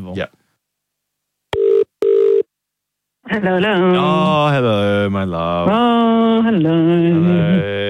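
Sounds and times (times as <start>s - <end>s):
speech: 0.0s - 0.4s, 3.3s - 7.8s
telephone ringing tone before the call connects: 1.6s - 2.5s.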